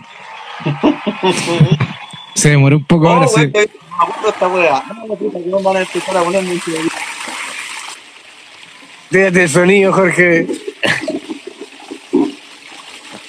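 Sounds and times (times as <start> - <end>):
several people talking and laughing: 0.0 - 6.9, 9.1 - 12.4
speech: 0.6 - 7.0, 9.1 - 10.6
toilet flushing: 5.5 - 13.2.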